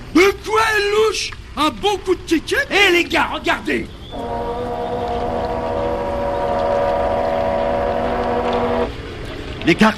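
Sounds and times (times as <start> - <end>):
rushing wash of motorboat at sea: 0.0 - 9.9
speech: 1.1 - 4.9, 9.6 - 9.9
motorboat engine running at sea: 3.9 - 9.9.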